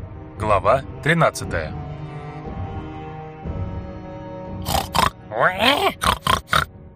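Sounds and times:
speech: 0:00.4 - 0:01.8, 0:05.3 - 0:06.2
huge wild boar grunting and squealing: 0:04.6 - 0:06.7.

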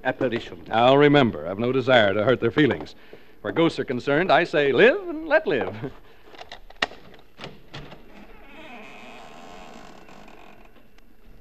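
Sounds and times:
speech: 0:00.0 - 0:06.1
front door creaking open on a squeaking hinge: 0:07.4 - 0:11.3.

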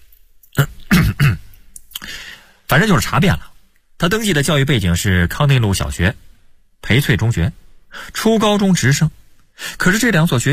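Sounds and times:
man clearing his throat: 0:00.6 - 0:01.5
speech: 0:02.7 - 0:10.5.

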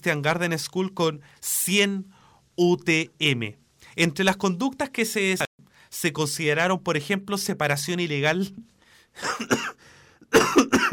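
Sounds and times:
speech: 0:00.0 - 0:09.8
person coughing harshly: 0:09.2 - 0:10.9.

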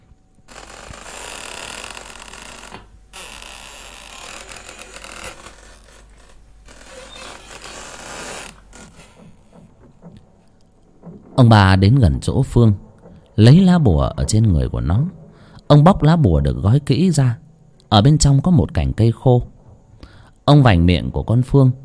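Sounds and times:
old door hinges creaking as a door slowly opens: 0:00.5 - 0:11.1
speech: 0:11.4 - 0:19.5, 0:20.5 - 0:21.8.

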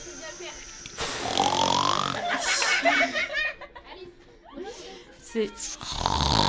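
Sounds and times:
person imitating snoring of a relative sleeping in a tent: 0:00.9 - 0:02.4, 0:05.8 - 0:06.4
laughter: 0:01.8 - 0:05.6.

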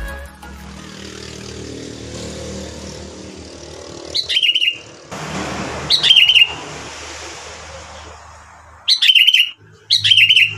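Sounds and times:
sooty-headed bulbul song: 0:04.1 - 0:05.0, 0:05.8 - 0:06.7, 0:08.8 - 0:10.5.

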